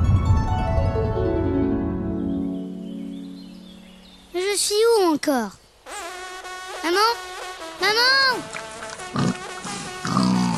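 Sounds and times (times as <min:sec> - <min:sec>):
noise: 0:00.0 - 0:10.5
speech: 0:04.6 - 0:05.6, 0:06.8 - 0:09.2
charging wild boar grunting: 0:08.9 - 0:10.5.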